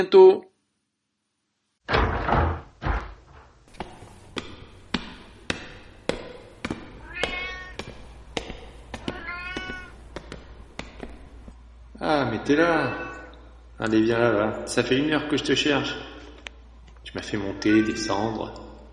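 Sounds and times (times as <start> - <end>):
speech: 0.0 - 0.5, 12.0 - 13.0, 13.8 - 16.1, 17.1 - 18.6
sharp thuds and knocks: 1.9 - 11.6
pet cat meowing: 7.0 - 7.8, 9.0 - 10.0, 12.7 - 13.4, 17.5 - 18.4.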